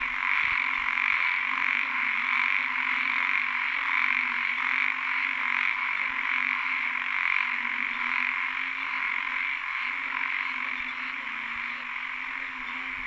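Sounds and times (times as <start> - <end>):
Microhyla fissipes frog: 0.0 - 13.0.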